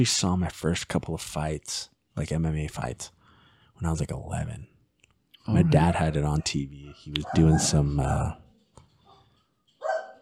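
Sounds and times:
speech: 0.0s - 3.2s, 3.8s - 4.7s, 5.5s - 8.4s
dog barking at mail delivery: 7.2s - 8.1s, 9.1s - 10.2s.

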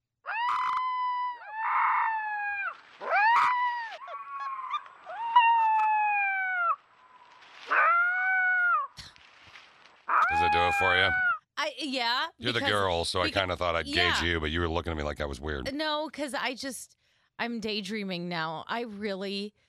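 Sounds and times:
wolf pup howling: 0.3s - 6.8s, 7.7s - 9.0s, 10.1s - 11.4s
speech: 10.5s - 19.6s.

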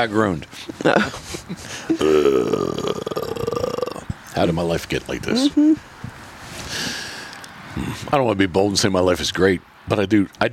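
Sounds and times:
speech: 0.0s - 3.0s, 4.4s - 5.9s, 7.8s - 10.5s
muffled low throaty burp: 1.9s - 4.2s.

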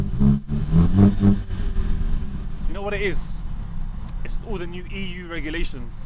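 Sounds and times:
car engine revving, started with the shift paddle held in: 0.0s - 4.4s
speech: 2.9s - 3.4s, 4.3s - 6.0s.

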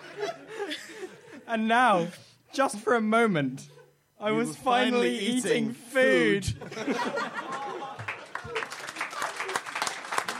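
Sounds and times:
crowd laughing: 0.0s - 1.5s, 6.4s - 9.6s
speech: 1.5s - 7.4s
audience clapping: 7.4s - 10.3s.

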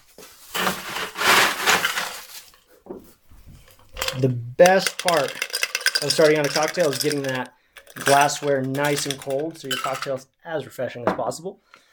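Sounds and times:
ice cubes clattering into a cocktail glass: 0.6s - 2.2s, 3.7s - 10.2s
speech: 4.2s - 11.8s.

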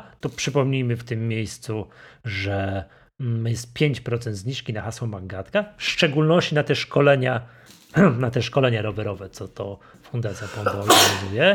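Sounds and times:
speech: 0.2s - 11.5s
single sharp loud sneeze: 10.4s - 11.5s.

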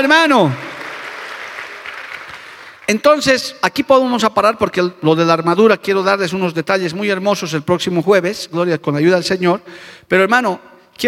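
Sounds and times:
speech: 0.0s - 0.7s, 2.9s - 11.0s
audience applauding: 0.0s - 2.9s.

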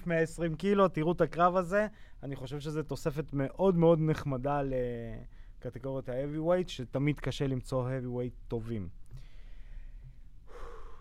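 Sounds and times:
speech: 0.0s - 9.0s
deep breath taken by speaker: 1.9s - 2.2s, 5.3s - 5.6s, 9.1s - 11.0s.

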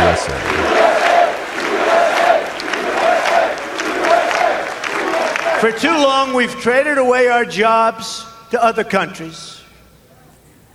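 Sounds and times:
rhythmic chanting: 0.0s - 5.6s
scattered clapping: 0.0s - 5.7s
large crowd cheering during standing ovation: 0.0s - 5.8s
speech: 5.6s - 9.6s.

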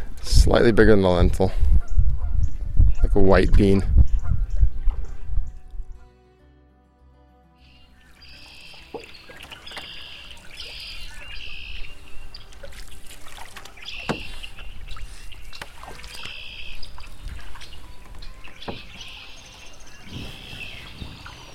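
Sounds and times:
speech: 0.4s - 1.7s, 3.2s - 4.1s
soft water and paddling sounds: 2.6s - 5.9s, 7.6s - 21.5s
geese honking as they fly off downstream: 7.6s - 21.5s.

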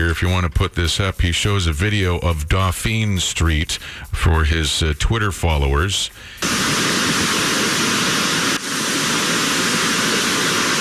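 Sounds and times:
speech: 0.0s - 7.4s
heavy rain on a city street: 6.4s - 10.8s
rushing floodwater on a city street: 6.4s - 10.8s.

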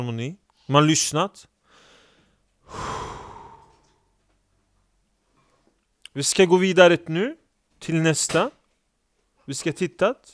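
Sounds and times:
speech: 0.0s - 1.5s, 6.1s - 8.6s, 9.5s - 10.3s
faint hiss: 0.0s - 10.3s
people taking a calming deep breath together: 1.6s - 4.2s.

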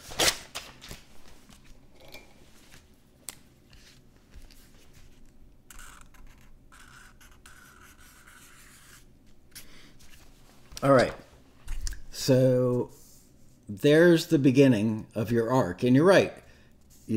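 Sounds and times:
pen scratching and rubbing across paper while drawing: 5.7s - 9.0s
speech: 10.8s - 11.2s, 12.2s - 13.0s, 13.8s - 16.4s.

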